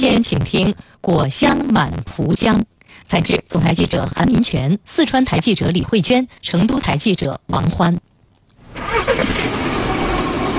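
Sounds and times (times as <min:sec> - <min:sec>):
speech: 0:00.0 - 0:08.1
car engine starting and idling: 0:08.6 - 0:10.5.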